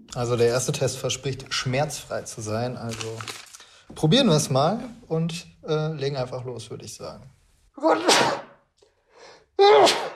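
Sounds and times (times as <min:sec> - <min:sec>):
speech: 0:00.2 - 0:08.4
person sneezing during nasal swab test: 0:07.8 - 0:08.6, 0:09.6 - 0:10.1.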